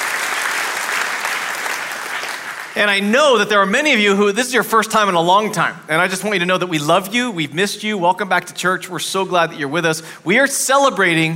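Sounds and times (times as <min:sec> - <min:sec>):
church congregation applauding at an Easter service: 0:00.0 - 0:03.6
speech: 0:02.8 - 0:11.3.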